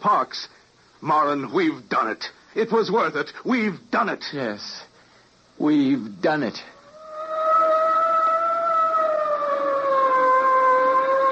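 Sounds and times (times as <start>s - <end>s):
speech: 0.0s - 4.9s, 5.6s - 6.7s
police boat siren in New York wailing: 6.8s - 11.2s.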